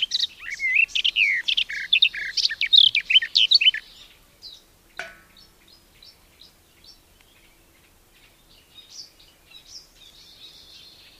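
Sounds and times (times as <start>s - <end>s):
garden warbler singing melodious warble: 0.0s - 11.1s.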